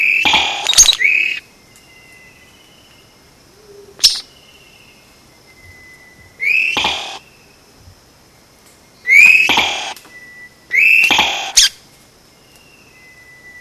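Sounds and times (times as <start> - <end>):
sharp snap: 0.2 - 1.0, 6.7 - 7.2, 9.2 - 10.1, 11.0 - 11.6
Vogelkop bowerbird giving short loud scratchy calls: 6.4 - 7.2, 9.1 - 10.0, 10.8 - 11.8.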